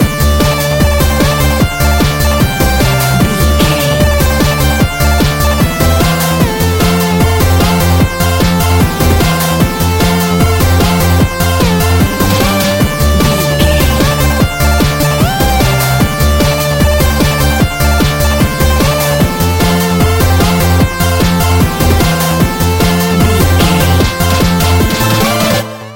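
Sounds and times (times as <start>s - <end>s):
retro 8-bit game stage music loop: 0.0s - 25.9s.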